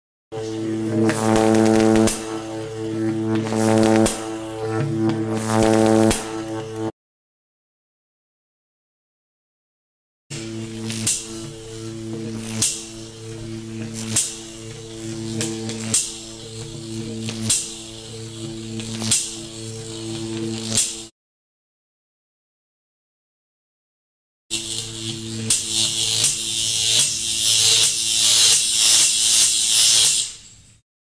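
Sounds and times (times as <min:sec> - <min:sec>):
electrocution buzz: 0:00.3 - 0:06.9, 0:10.3 - 0:21.1, 0:24.5 - 0:30.8.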